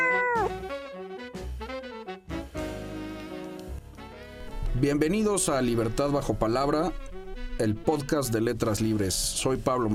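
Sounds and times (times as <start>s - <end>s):
cat meowing: 0.0s - 0.6s
speech: 4.8s - 9.9s.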